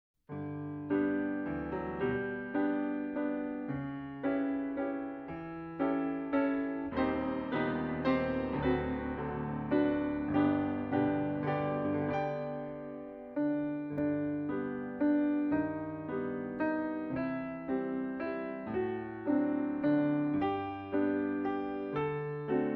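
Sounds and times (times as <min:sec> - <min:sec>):
piano accompaniment: 0:00.3 - 0:22.7.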